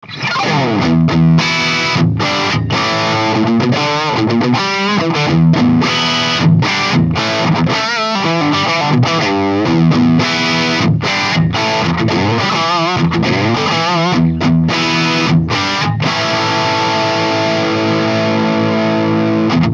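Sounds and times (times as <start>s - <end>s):
micro power amp through cabinet and microphone with JCM800 preamp: 0.0s - 19.7s.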